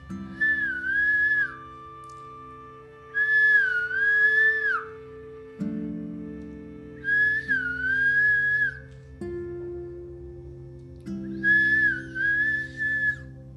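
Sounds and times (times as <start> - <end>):
quiet sustained music: 0.0 - 13.5
human whistling imitating a koel bird: 0.3 - 5.0, 7.0 - 8.9, 11.3 - 13.3.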